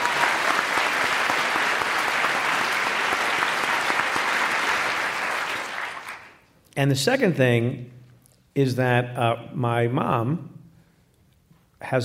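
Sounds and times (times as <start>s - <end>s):
crowd applauding: 0.0s - 6.4s
speech: 6.8s - 8.0s, 8.6s - 10.5s, 11.8s - 12.0s.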